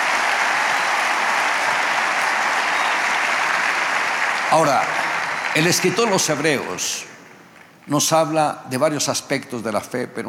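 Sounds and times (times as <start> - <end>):
congregation applauding: 0.0 - 8.2
speech: 4.5 - 7.1, 7.9 - 10.2.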